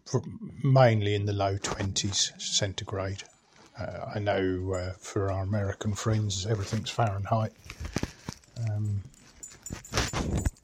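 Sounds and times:
speech: 0.1 - 9.1
clinks and jangles: 3.0 - 10.6
dog rattling about: 8.4 - 10.6.

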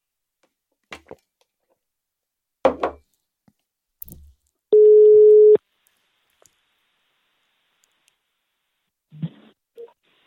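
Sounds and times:
telephone ringing tone while placing a call: 4.7 - 5.6.

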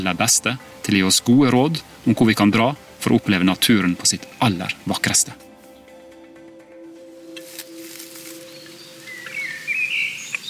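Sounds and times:
speech: 0.0 - 5.5
birds chirping and twittering in woods in Norway: 3.4 - 10.4.

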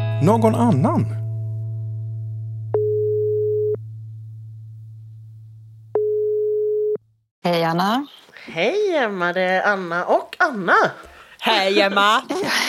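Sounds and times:
speech: 0.2 - 1.2, 7.4 - 12.6
constant low hum: 2.1 - 7.1
telephone ringing tone beeps while placing a call: 2.8 - 3.8, 6.0 - 7.0
laughter: 11.8 - 12.6.

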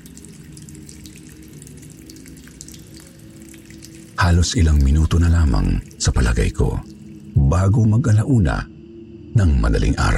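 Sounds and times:
water pouring from a hose into a container: 0.0 - 7.4
speech: 4.2 - 8.7, 9.4 - 10.1.

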